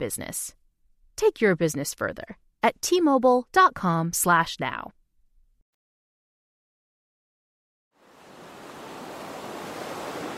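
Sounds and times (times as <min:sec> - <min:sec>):
speech: 0:00.0 - 0:00.6, 0:01.2 - 0:05.0
ocean waves and surf: 0:08.0 - 0:10.3.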